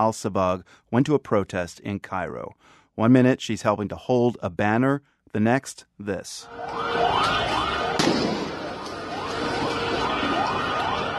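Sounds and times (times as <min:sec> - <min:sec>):
speech: 0:00.0 - 0:07.7
wailing sweeping sirens: 0:06.4 - 0:11.1
single sharp gunshot over a street protest: 0:07.9 - 0:08.7.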